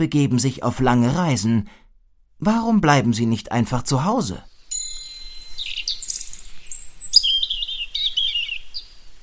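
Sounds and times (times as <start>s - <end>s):
speech: 0.0s - 1.8s, 2.4s - 4.5s
common chaffinch singing: 4.1s - 9.2s.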